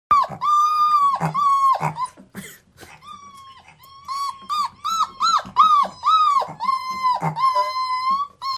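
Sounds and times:
puppy: 0:00.1 - 0:08.5.

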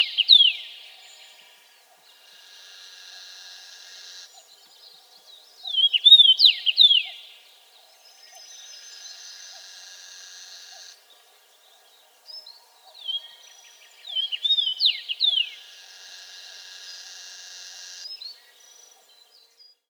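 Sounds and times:
Common Rosefinch: 0:00.0 - 0:19.8.

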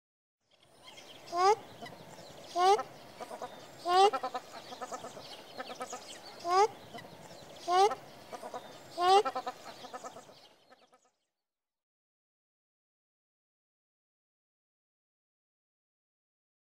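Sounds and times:
crested shelduck calling: 0:01.3 - 0:11.0.

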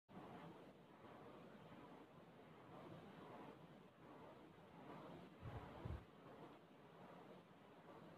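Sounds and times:
windmill: 0:00.1 - 0:08.1.

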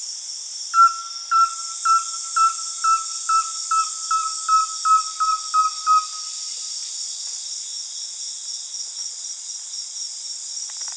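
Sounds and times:
rusty-belted tapaculo calling in short whistled notes: 0:00.8 - 0:06.4
constant high insect hiss: 0:00.8 - 0:10.9.

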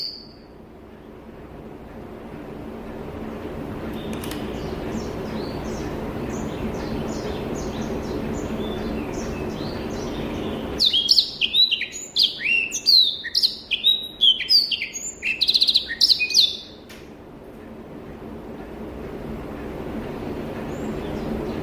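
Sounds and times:
Rüppell's warbler song with sweeping notes and whistled clicking phrases: 0:00.0 - 0:21.6.

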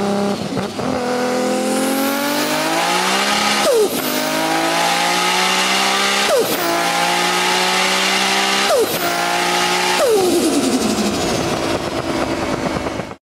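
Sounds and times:
Nissan GT-R exhaust: 0:00.1 - 0:13.2.

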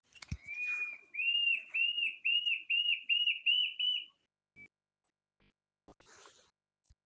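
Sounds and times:
Mackenziaena bird calling: 0:00.1 - 0:04.2.

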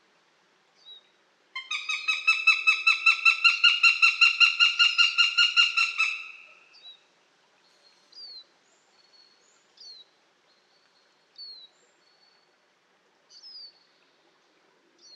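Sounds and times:
Eurasian goshawk giving a harsh cackling series: 0:01.6 - 0:06.6.

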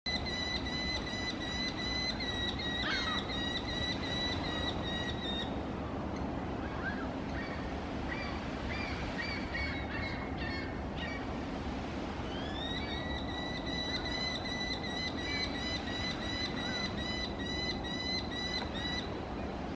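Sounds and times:
merlin bird calling: 0:00.1 - 0:11.3, 0:12.2 - 0:19.2.

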